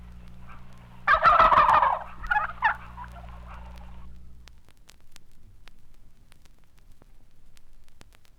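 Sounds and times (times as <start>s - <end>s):
constant low hum: 0.0s - 8.3s
turkey giving a loud rattling gobble: 0.4s - 4.1s.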